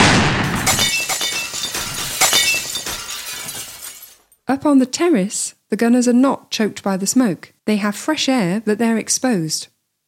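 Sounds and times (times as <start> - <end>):
window glass shattering: 0.1 - 4.4
smaller glass shards tinkling and clattering: 0.7 - 4.4
speech: 4.6 - 9.7.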